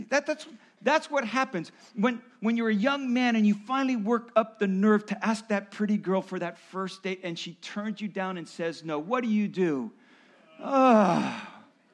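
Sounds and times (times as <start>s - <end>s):
speech: 0.1s - 10.0s, 10.6s - 11.5s
man groaning: 10.5s - 11.6s.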